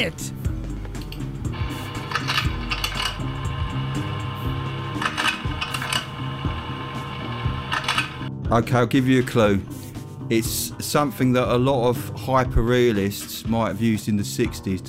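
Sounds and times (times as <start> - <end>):
speech: 0.0 - 0.3, 8.5 - 9.7, 10.3 - 14.8
projector mechanism clicking: 1.0 - 3.6, 4.8 - 8.3
projector motor hum: 1.4 - 8.3.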